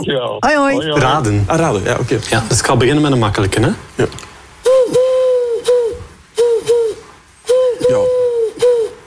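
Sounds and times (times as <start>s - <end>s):
speech: 0.0s - 4.3s
dove cooing: 4.7s - 9.0s.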